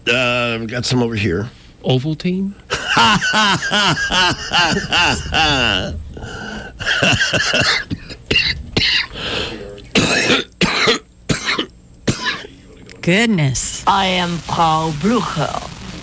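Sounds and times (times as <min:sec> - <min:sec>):
speech: 0:00.1 - 0:08.4, 0:13.0 - 0:15.6
laughter: 0:02.7 - 0:06.0, 0:06.8 - 0:07.8
person imitating harsh hacking coughs: 0:06.8 - 0:09.2, 0:10.0 - 0:12.5.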